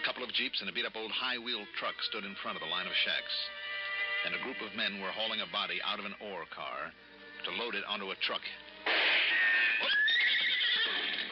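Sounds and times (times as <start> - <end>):
speech: 0.2 - 9.0
horse whinnying: 9.2 - 11.3.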